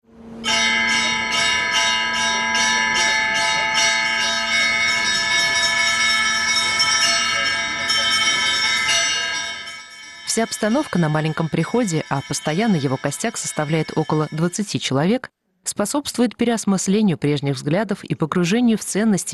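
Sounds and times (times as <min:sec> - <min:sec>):
church bells ringing: 0:00.4 - 0:14.7
speech: 0:10.4 - 0:19.3.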